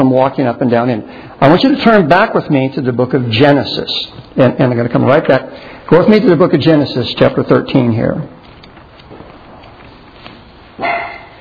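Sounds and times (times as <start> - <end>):
speech: 0.0 - 8.4
dog barking: 10.8 - 11.3.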